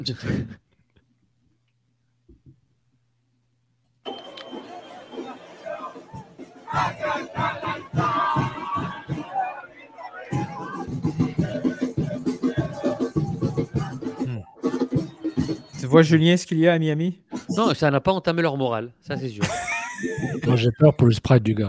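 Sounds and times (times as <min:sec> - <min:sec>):
speech: 0:00.0 - 0:00.6, 0:15.9 - 0:21.6
football supporters shouting: 0:04.1 - 0:15.0
crowd of football supporters babbling during a lightning delay: 0:04.1 - 0:15.7
laughter: 0:04.3 - 0:14.2, 0:19.2 - 0:20.9.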